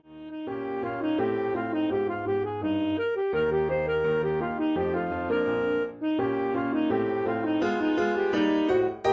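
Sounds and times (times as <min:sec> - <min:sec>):
saxophone solo tag ending: 0:00.0 - 0:09.0.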